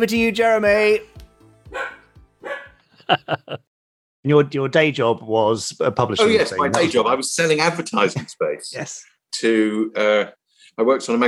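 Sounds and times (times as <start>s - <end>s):
speech: 0.0s - 1.1s, 3.1s - 11.2s
dog barking: 1.7s - 2.8s
laughter: 2.9s - 3.7s.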